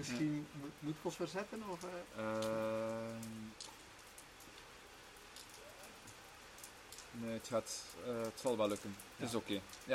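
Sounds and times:
speech: 0.0s - 3.8s, 7.1s - 9.9s
heavy rain falling: 0.0s - 9.9s.

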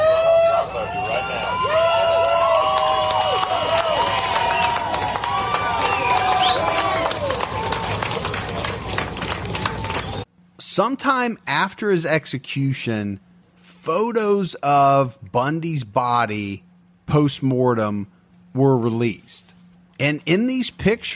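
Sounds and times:
large outdoor crowd cheering and shouting: 0.0s - 10.2s
people whooping: 0.0s - 10.2s
scattered clapping: 1.0s - 10.3s
speech: 10.8s - 21.1s.

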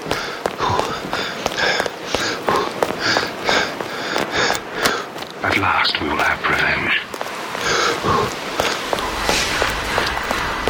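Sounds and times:
running footsteps: 0.0s - 10.6s
low rumble: 8.9s - 10.6s.

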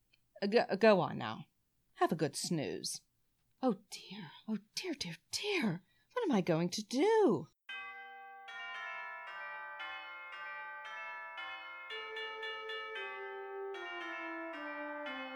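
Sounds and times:
speech: 0.4s - 7.5s
elaborate chiming doorbell playing a long melody: 7.7s - 15.3s.

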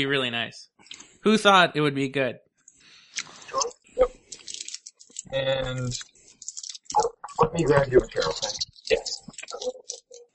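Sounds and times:
speech: 0.0s - 2.4s, 5.2s - 6.1s, 7.0s - 9.8s
loud chewing of a Starburst candy: 3.2s - 10.3s.

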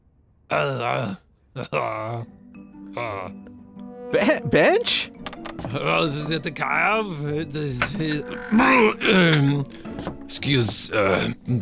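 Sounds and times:
person groaning in a bathroom: 0.5s - 2.3s, 2.9s - 3.4s, 8.4s - 9.6s
speech: 0.5s - 3.5s, 4.1s - 11.6s.

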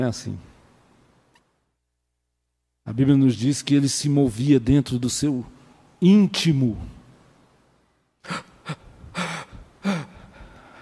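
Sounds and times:
speech: 0.0s - 0.5s, 2.9s - 7.0s, 8.2s - 8.8s
person gasping for breath: 8.2s - 10.7s.

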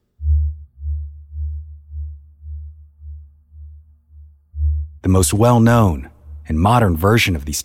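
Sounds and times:
eerie low humming of singing river: 0.0s - 5.0s
speech: 5.0s - 7.6s.

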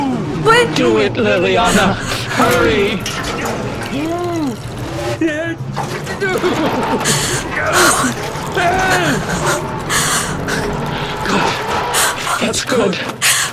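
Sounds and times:
laughter: 0.5s - 3.9s, 5.2s - 13.5s
speech: 0.8s - 3.2s, 5.2s - 10.1s, 12.4s - 13.3s
kerosene gurgling out of a can poured around a basement: 2.5s - 9.8s.

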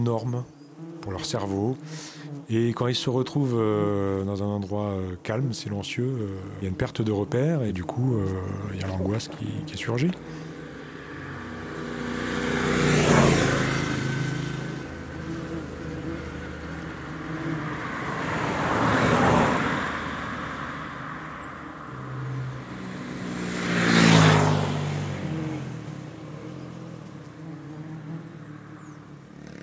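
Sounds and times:
speech: 0.0s - 10.5s
road traffic with cars and motorcycles: 0.0s - 29.6s
motorcycle engines whining and revving: 7.6s - 29.6s.

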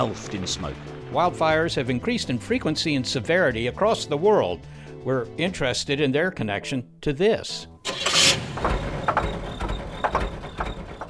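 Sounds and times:
speech: 0.0s - 7.7s
car engine starting and idling: 7.8s - 11.0s.

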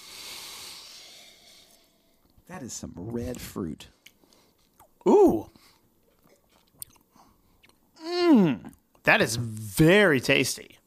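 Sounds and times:
person sniffing a glass of Nebbiolo Italian red wine: 0.0s - 2.2s
speech: 2.5s - 4.0s, 5.0s - 5.6s, 9.2s - 10.8s.

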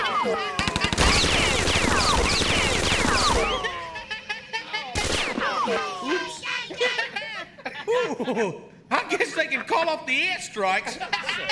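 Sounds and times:
laughter: 0.0s - 9.7s, 10.6s - 11.5s
video game automatic gunfire: 0.6s - 3.8s, 5.0s - 5.6s
speech: 8.3s - 8.7s, 9.4s - 11.5s.

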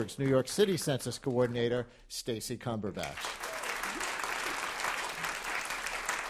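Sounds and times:
speech: 0.0s - 3.4s
audience applause with guests on a stage clapping: 3.1s - 6.2s.

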